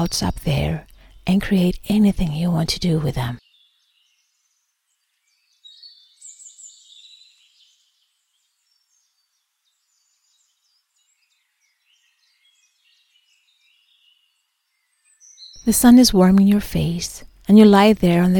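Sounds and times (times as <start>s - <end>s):
speech: 0.0s - 3.4s, 15.7s - 18.3s
faint birdsong with high chirps and tweets: 0.0s - 18.3s.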